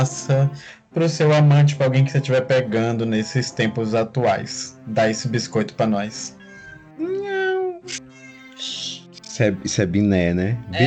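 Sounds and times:
speech: 0.0 - 6.4, 7.0 - 8.0, 8.6 - 10.8
cat meowing in São Luís: 7.9 - 8.8.

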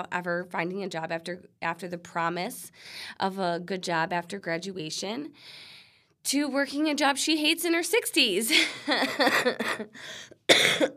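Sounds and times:
speech: 0.0 - 10.9
harsh hacking coughing: 9.1 - 10.9.

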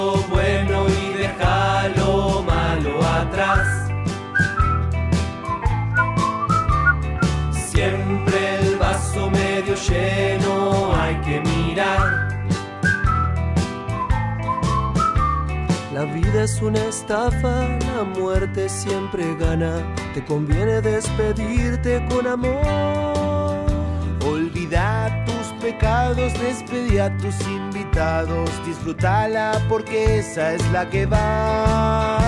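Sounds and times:
full band accompaniment with steady bass and rhythm: 0.0 - 16.9
person whistling a bright bouncy tune: 3.4 - 7.5, 11.8 - 16.4
speech: 16.0 - 23.2, 24.2 - 32.1.

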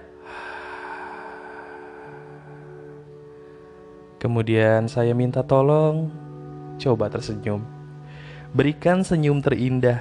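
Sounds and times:
deep breath in through nose and slow exhale: 0.0 - 4.0, 8.0 - 8.5
speech: 4.2 - 6.2, 6.8 - 7.8, 8.5 - 9.9.

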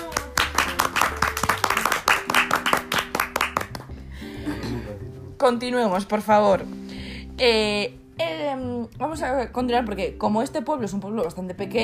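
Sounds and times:
applause from a small group of audience members: 0.0 - 4.0
speech: 5.4 - 6.8, 7.4 - 11.8.

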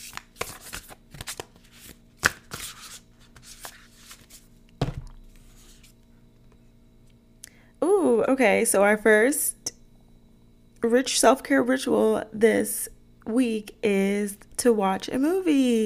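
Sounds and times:
cards rustling: 0.0 - 4.4
decks of cards shuffling: 0.0 - 5.9
speech: 8.2 - 9.5, 10.8 - 15.8.

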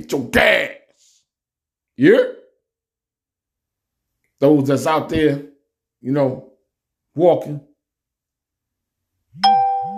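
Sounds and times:
speech: 0.0 - 0.8, 2.0 - 2.4, 4.4 - 6.5, 7.2 - 7.7, 9.4 - 9.6
notification ding: 9.4 - 9.9.

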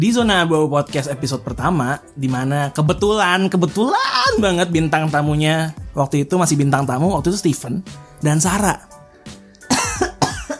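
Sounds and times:
speech: 0.0 - 9.4
person coughing: 9.7 - 10.5.

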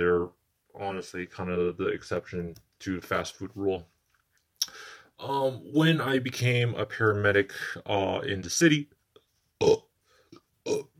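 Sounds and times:
speech: 0.0 - 4.0, 4.6 - 9.0, 9.6 - 9.8
person burping: 9.6 - 9.9, 10.6 - 10.9.

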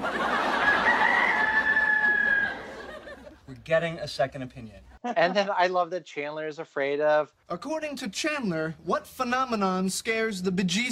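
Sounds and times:
laughter: 0.0 - 3.5, 5.0 - 5.6
rooster crowing: 0.5 - 2.9
speech: 3.7 - 10.9.

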